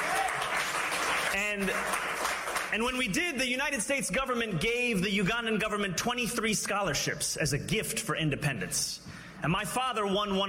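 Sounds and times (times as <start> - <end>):
audience clapping: 0.0 - 3.1
speech: 1.5 - 2.1, 2.7 - 10.4.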